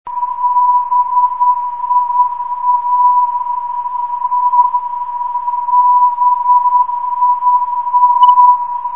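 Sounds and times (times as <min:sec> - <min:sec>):
474 kHz non-directional radio beacon signal: 0:00.1 - 0:08.9.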